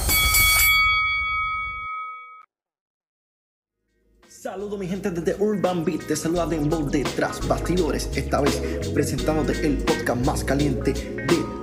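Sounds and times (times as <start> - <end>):
wrestling ring bell clanging: 0.0 - 2.5
speech: 4.4 - 11.6.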